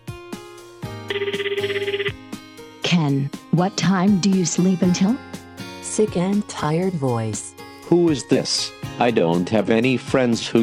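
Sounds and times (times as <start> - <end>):
telephone electronic ringtone: 1.1 - 2.2
speech: 1.2 - 1.9, 2.9 - 5.3, 6.0 - 10.6.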